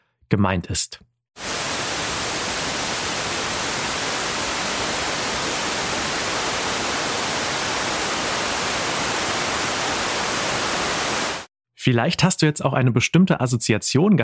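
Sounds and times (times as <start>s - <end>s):
speech: 0.3s - 1.5s, 11.8s - 14.2s
white noise hiss: 1.4s - 11.5s.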